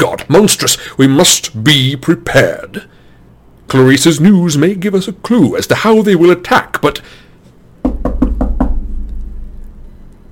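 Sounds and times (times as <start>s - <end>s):
speech: 0.0s - 3.0s, 3.7s - 7.2s
knocks on a wooden door: 7.8s - 9.0s
low rumbling tone: 8.6s - 10.2s.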